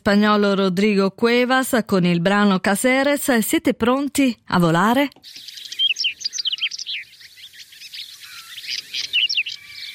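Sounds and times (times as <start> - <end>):
speech: 0.0 - 5.6
whinchat singing in a meadow: 5.2 - 9.9.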